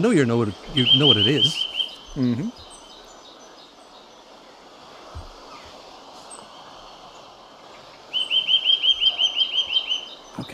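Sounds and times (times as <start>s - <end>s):
speech: 0.0s - 2.7s
steady outdoor hiss: 0.0s - 10.5s
nuthatch piping calls: 0.5s - 4.1s, 8.1s - 10.4s.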